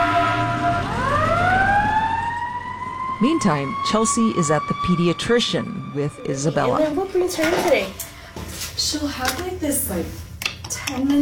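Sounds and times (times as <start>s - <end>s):
emergency vehicle siren sweeping upward and wailing: 0.0s - 8.0s
speech: 3.2s - 8.1s, 8.8s - 10.2s, 10.9s - 11.2s.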